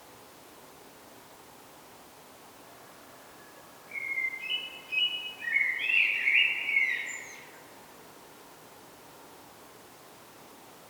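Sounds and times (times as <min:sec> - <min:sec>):
light background noise: 0:00.0 - 0:10.8
common blackbird Turdus merula singing a mellow warbling phrase: 0:04.0 - 0:07.5.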